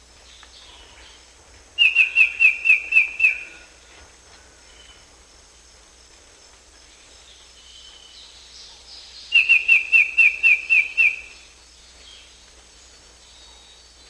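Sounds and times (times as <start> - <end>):
faint background hiss: 0.0 - 14.0
black-headed antbird song in South America: 1.8 - 3.6, 9.2 - 11.5.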